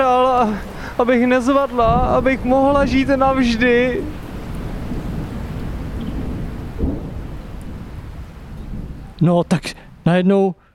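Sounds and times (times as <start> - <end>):
speech: 0.0 - 4.2, 9.2 - 10.6
steady rain: 0.0 - 10.7
continuous low rumble of thunder: 1.4 - 10.1
sharp thunder crack: 1.8 - 9.2.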